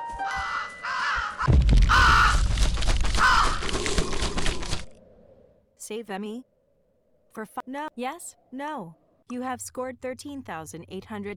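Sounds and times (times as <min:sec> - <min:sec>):
raven cawing loudly and harshly: 0:00.2 - 0:04.8
speech: 0:05.9 - 0:06.5, 0:07.4 - 0:11.3.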